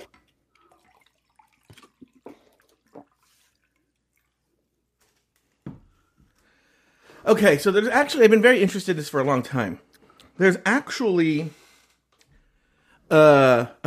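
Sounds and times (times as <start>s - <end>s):
water pouring into a glass: 0.0s - 4.5s
speech: 7.2s - 11.6s, 13.1s - 13.8s.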